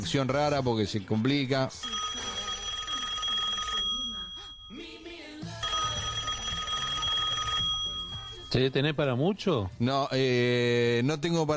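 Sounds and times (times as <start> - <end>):
speech: 0.0 - 2.0, 8.6 - 11.5
phone ringback tone during outgoing call: 1.7 - 9.0.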